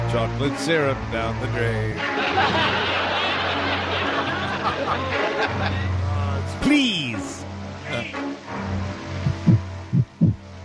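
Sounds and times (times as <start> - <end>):
speech: 0.1 - 3.1, 4.7 - 6.0, 6.6 - 8.3
laughter: 2.0 - 6.1
deep heartbeat thumps: 9.2 - 10.5.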